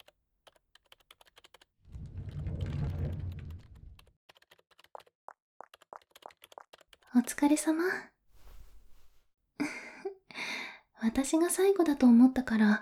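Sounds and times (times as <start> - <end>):
typing on a computer keyboard: 0.0 - 1.7, 3.7 - 7.0
low rumbling burst: 1.9 - 4.0
speech: 7.2 - 8.1, 11.0 - 12.8.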